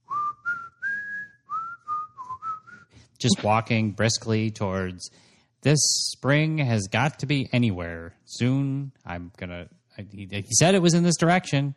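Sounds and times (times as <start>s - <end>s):
person whistling a melody while walking briskly through woods: 0.0s - 3.4s
speech: 3.2s - 11.7s.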